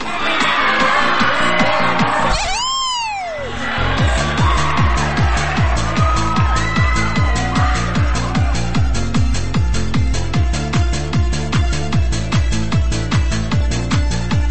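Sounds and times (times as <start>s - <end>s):
crowd screaming and cheering: 0.0s - 14.5s
loud pounding club music with a steady thumping beat: 0.0s - 14.5s
high whooping sweep: 1.0s - 10.4s.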